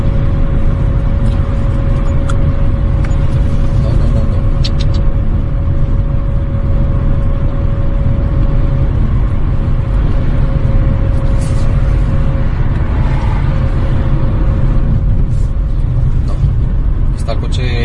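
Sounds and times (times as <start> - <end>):
car engine droning in emergency limp mode heard from inside the cabin: 0.0 - 17.8.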